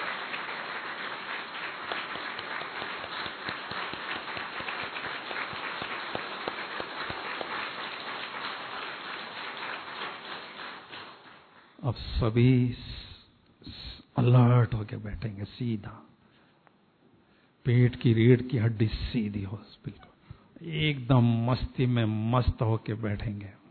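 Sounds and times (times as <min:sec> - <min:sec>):
crowd clapping loudly: 0:00.0 - 0:11.8
speech: 0:11.9 - 0:12.9, 0:14.2 - 0:16.0, 0:17.6 - 0:23.6.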